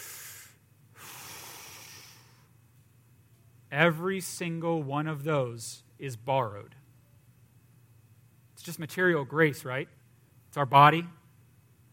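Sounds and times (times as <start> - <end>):
people inhaling and exhaling together: 0.0 - 2.6
speech: 3.7 - 6.8, 8.7 - 10.0, 10.6 - 11.2.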